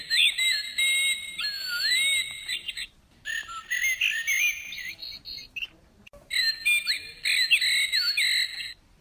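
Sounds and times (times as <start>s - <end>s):
nightingale singing: 0.0s - 8.8s.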